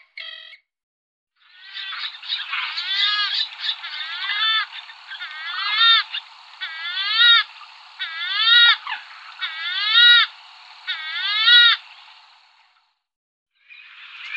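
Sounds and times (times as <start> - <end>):
western swamphen nasal wails: 1.6 - 11.9
western swamphen rough scratchy chattering: 1.7 - 12.0.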